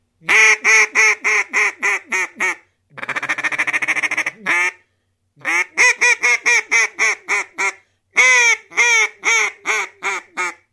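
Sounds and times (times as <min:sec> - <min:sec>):
duck call: 0:00.2 - 0:04.8, 0:05.4 - 0:10.7.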